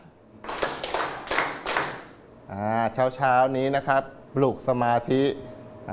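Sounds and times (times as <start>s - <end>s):
group of people clapping hands in unison: 0.4s - 2.2s
speech: 2.5s - 5.9s.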